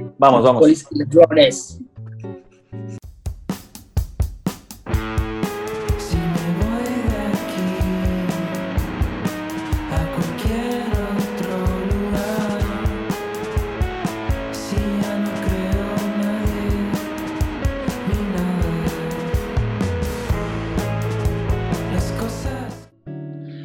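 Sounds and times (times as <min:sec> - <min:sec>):
speech: 0:00.2 - 0:01.9
contemporary band playing a song with a driving beat: 0:04.7 - 0:22.9
sung melody: 0:04.9 - 0:23.2.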